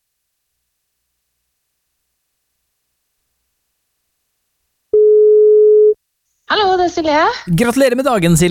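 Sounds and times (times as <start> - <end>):
telephone ringback tone while a call connects: 5.0 - 6.0
speech: 6.9 - 8.5.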